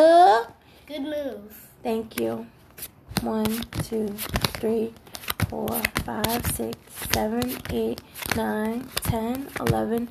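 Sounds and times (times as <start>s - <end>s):
speech: 1.0s - 10.0s
playing cards being drawn and handled during a card game: 2.2s - 10.0s.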